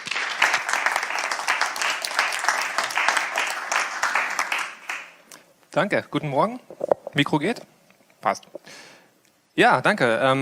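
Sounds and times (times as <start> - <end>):
audience applause for a speaker: 0.0 - 5.2
speech: 5.8 - 8.8, 9.6 - 10.4.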